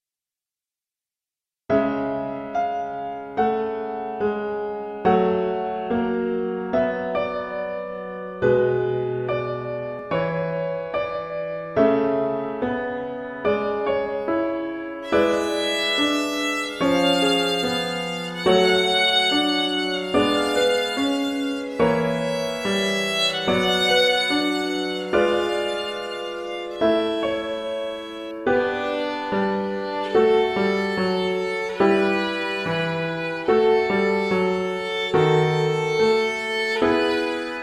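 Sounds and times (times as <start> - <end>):
piano playing: 1.7 - 37.6
violin playing: 15.0 - 37.6.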